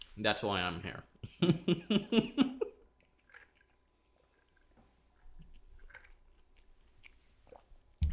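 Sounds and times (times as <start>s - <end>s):
speech: 0.2s - 2.5s
voiced laughter: 1.2s - 2.8s
chewing food: 2.9s - 8.1s.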